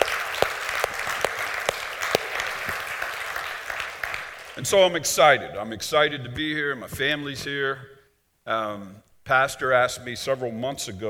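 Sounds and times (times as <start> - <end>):
audience applauding: 0.0 - 4.8
speech: 4.6 - 11.0.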